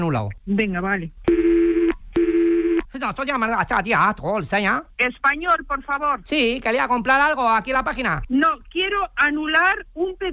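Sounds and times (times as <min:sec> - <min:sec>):
speech: 0:00.0 - 0:01.5, 0:02.9 - 0:10.3
buzzing phone-line tones during a call transfer: 0:01.3 - 0:02.8.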